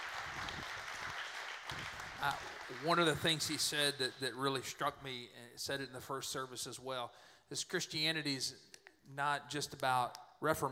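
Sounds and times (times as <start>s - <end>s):
crowd applauding: 0.0s - 4.0s
speech: 2.2s - 10.7s.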